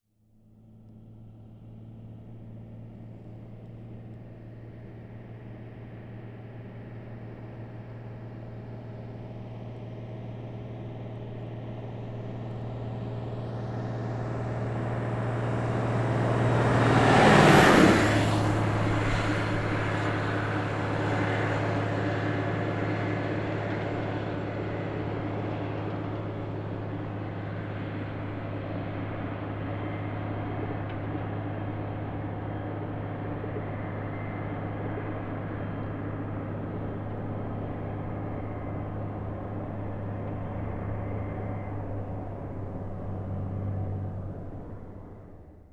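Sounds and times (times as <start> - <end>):
18-wheeler truck passing by at 55 mph: 0.6 - 45.7.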